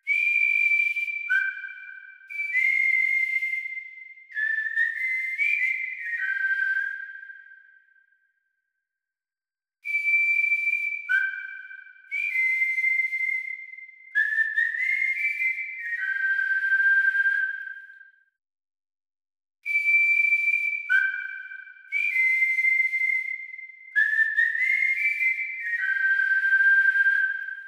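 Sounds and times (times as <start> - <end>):
instrumental whistle melody: 0.0 - 8.2, 9.8 - 18.2, 19.7 - 27.6.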